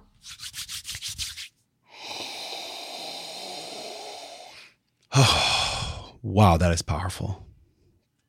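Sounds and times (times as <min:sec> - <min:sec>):
hands rubbing eucalyptus oil between the palms: 0:00.2 - 0:01.6
speech: 0:05.2 - 0:05.5, 0:06.2 - 0:07.5.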